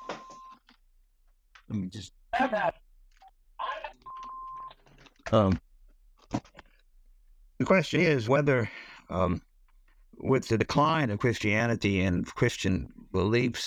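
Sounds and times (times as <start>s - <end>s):
phone ringing with electronic tones: 0.0s - 0.6s, 4.0s - 4.7s
speech: 1.7s - 2.8s, 5.3s - 5.6s, 7.6s - 9.5s, 10.2s - 13.6s.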